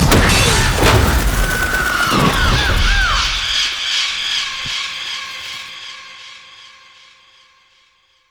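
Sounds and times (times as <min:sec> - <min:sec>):
storm of crows cawing: 0:00.3 - 0:04.9.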